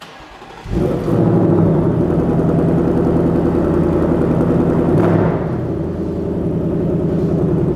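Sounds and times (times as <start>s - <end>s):
car engine cranking, catching and rumbling with a throttle blip: 0.0s - 7.7s.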